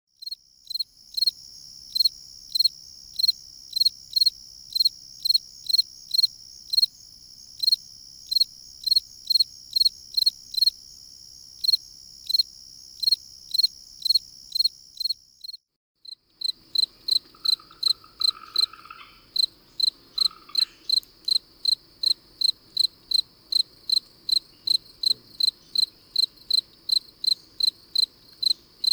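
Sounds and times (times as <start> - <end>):
field crickets chirping in Northern Illinois: 0.2 - 28.9.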